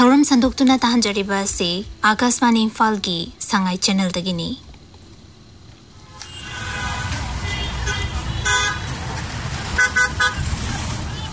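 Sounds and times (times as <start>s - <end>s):
rumble of road traffic engines on a busy street: 0.0s - 11.3s
speech: 0.2s - 4.6s
short car horn toots: 6.0s - 11.3s.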